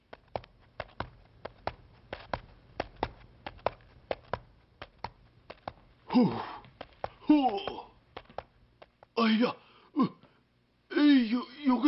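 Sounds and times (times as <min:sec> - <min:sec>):
crisp footsteps on a hard surface: 0:00.0 - 0:09.4
speech: 0:06.2 - 0:06.5, 0:07.3 - 0:07.8, 0:09.3 - 0:10.1.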